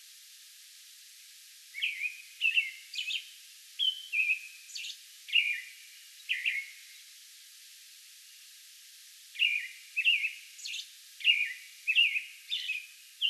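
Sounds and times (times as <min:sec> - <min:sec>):
American robin singing: 0:01.7 - 0:06.9, 0:09.4 - 0:13.2.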